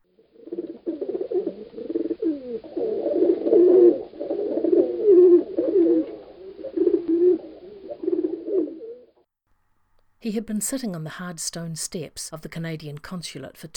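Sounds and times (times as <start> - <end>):
pigeons cooing while picking crumbs off a sidewalk: 0.0 - 9.2
speech: 10.3 - 13.7.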